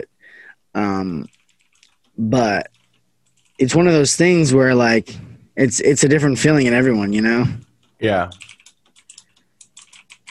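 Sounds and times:
speech: 0.7s - 1.4s, 2.2s - 2.8s, 3.6s - 8.6s
computer keyboard typing with crisp clicky keystrokes: 1.2s - 3.7s, 7.1s - 10.2s.

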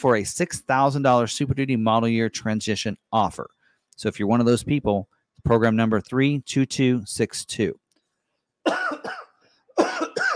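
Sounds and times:
speech: 0.0s - 7.8s, 8.7s - 9.2s
person coughing from a tickle in the throat: 8.7s - 10.3s.

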